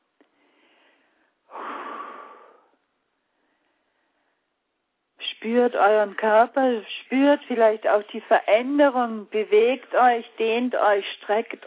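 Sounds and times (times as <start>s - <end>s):
single deep breath inhale and exhale: 0.4s - 4.5s
speech: 5.4s - 11.6s.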